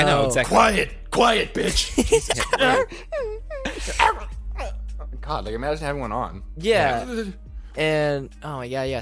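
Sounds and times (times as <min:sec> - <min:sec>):
speech: 0:00.0 - 0:04.7, 0:05.3 - 0:09.0
laughter: 0:01.6 - 0:04.3
person imitating a dog whimpering: 0:02.5 - 0:04.8, 0:06.8 - 0:07.4
person imitating a dog barking: 0:03.8 - 0:04.8.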